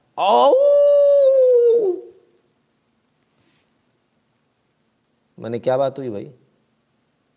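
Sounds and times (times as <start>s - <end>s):
speech: 0.2s - 0.8s, 5.4s - 6.4s
dog howling: 0.2s - 2.2s.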